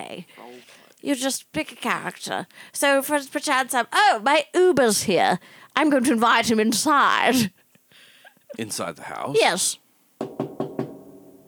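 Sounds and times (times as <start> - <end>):
speech: 0.1 - 7.6, 8.5 - 10.5
knocking on a door: 10.2 - 11.2.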